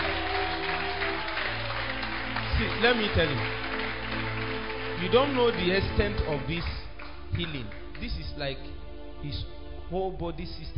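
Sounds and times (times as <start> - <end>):
congregation applauding at a religious healing gathering: 0.0 - 8.4
speech: 2.6 - 3.7, 5.0 - 6.8, 7.4 - 10.7.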